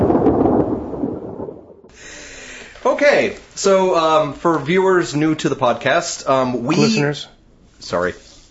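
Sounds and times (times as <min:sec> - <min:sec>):
thunder crack sound effect introducing a lightning round: 0:00.0 - 0:01.9
speech: 0:02.8 - 0:08.2.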